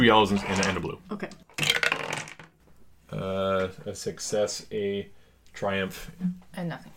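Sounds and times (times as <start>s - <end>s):
speech: 0.0s - 1.4s, 3.1s - 6.9s
dice rolling on a hard tabletop: 0.3s - 2.6s.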